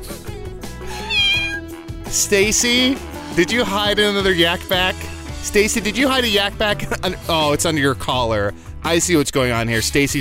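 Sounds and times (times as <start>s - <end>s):
cat meowing: 0.9s - 1.7s
speech: 2.1s - 10.1s.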